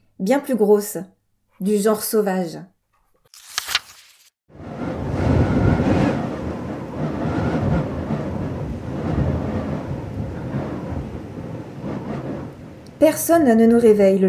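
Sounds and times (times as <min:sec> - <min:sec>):
speech: 0:00.2 - 0:02.7, 0:13.0 - 0:14.2
deep rolling thunder of a heavy storm: 0:04.5 - 0:13.8
gusting wind of a heavy storm: 0:04.5 - 0:14.2.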